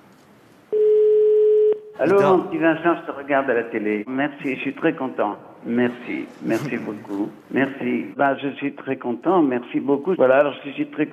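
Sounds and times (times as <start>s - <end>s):
faint noise: 0.0s - 11.1s
steady telephone tone while calling someone: 0.7s - 2.0s
speech: 2.0s - 11.1s.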